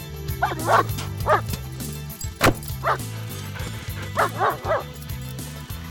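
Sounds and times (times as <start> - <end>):
dog whimpering: 0.4 - 1.7, 2.7 - 5.0
dog barking: 0.4 - 5.5.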